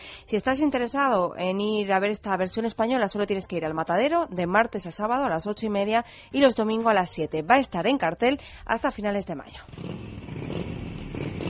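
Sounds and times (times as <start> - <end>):
speech: 0.3 - 10.6
motorcycle engine revving: 9.6 - 11.4.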